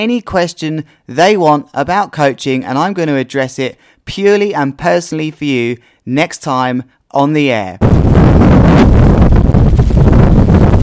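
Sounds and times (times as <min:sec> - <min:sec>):
speech: 0:00.0 - 0:09.0
strong wind buffeting a microphone on a beach: 0:07.8 - 0:10.8.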